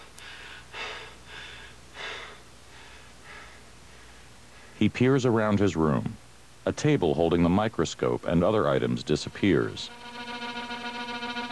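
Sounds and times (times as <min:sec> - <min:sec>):
heavy panting: 0:00.0 - 0:04.8
speech: 0:04.8 - 0:10.2.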